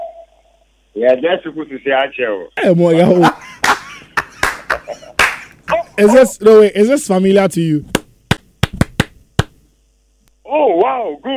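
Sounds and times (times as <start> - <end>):
speech: 1.0 - 3.4, 6.0 - 8.0, 11.0 - 11.3
laughter: 2.6 - 6.4
classroom clapping in a quick rhythmic pattern: 3.2 - 6.0, 7.9 - 9.6.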